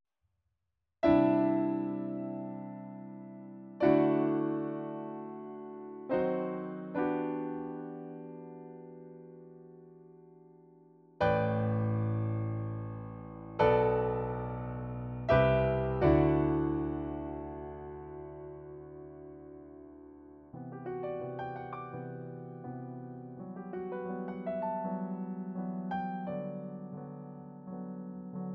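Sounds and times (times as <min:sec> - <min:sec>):
piano: 0:01.0 - 0:28.5.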